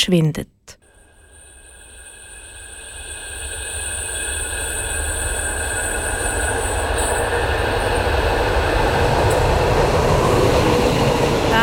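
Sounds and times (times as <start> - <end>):
speech: 0.0 - 0.8
high-pitched train wheel squeal: 0.8 - 11.6.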